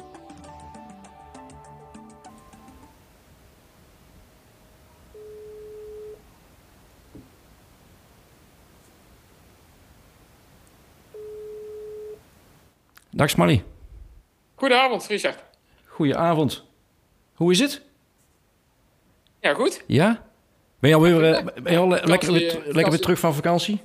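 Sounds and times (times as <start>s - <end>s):
constant hiss: 0.0s - 23.8s
telephone ringback tones while calling a friend: 4.9s - 6.3s, 11.1s - 12.2s
speech: 13.2s - 13.7s, 14.6s - 16.7s, 17.4s - 17.9s, 19.4s - 23.8s.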